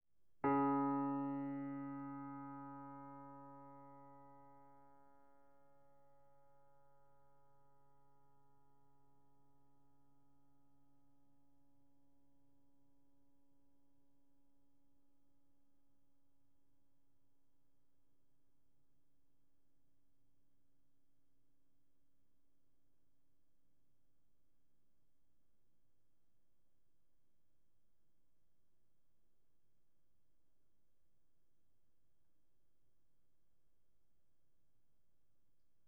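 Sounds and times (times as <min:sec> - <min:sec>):
piano note D flat 3 played mezzo forte: 0:00.4 - 0:05.0.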